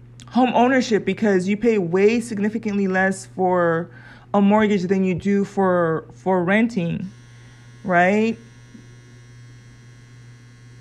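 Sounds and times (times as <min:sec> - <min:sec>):
clothes dryer droning: 0:00.0 - 0:10.7
speech: 0:00.3 - 0:07.2, 0:07.8 - 0:08.5.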